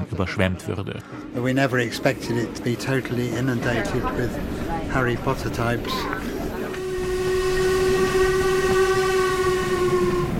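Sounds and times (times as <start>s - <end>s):
speech: 0.2s - 6.3s
train rumbling and rattling over a viaduct in a right-hand curve: 1.2s - 10.3s
steam locomotive whistle: 5.8s - 10.3s.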